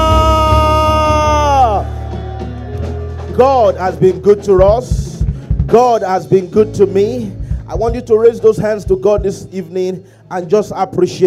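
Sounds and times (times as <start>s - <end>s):
audience shouting hallelujah together: 0.0s - 3.3s
speech: 3.4s - 5.0s, 5.7s - 11.2s.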